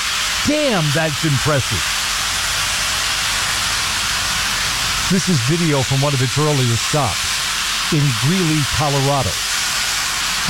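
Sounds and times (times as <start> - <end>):
steam locomotive hissing: 0.0 - 10.4
speech: 0.4 - 2.0, 5.1 - 7.3, 7.9 - 9.5.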